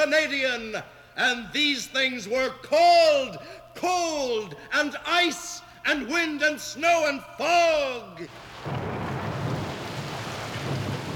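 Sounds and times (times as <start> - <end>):
speech: 0.0 - 8.8
deep continuous rumble of thunder: 8.3 - 11.1.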